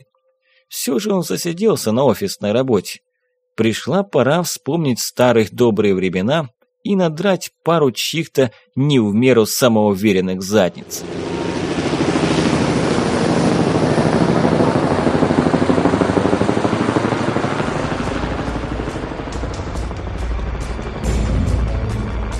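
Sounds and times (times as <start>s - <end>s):
speech: 0.0s - 11.4s
military helicopters hovering over department store rooftops: 10.4s - 22.3s.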